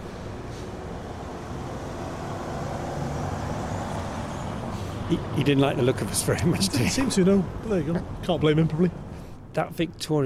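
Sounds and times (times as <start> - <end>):
car engine and road rumble outdoors: 0.0 - 5.2
speech: 5.1 - 9.0, 9.6 - 10.2.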